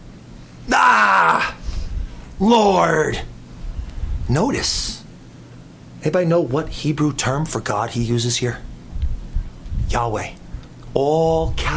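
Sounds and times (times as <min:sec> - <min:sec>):
voice imitating a groan of disgust: 0:00.7 - 0:01.6
quiet low rumbling: 0:01.6 - 0:11.7
speech: 0:02.4 - 0:03.3, 0:04.3 - 0:05.0, 0:06.0 - 0:08.7, 0:09.9 - 0:10.4, 0:11.0 - 0:11.7.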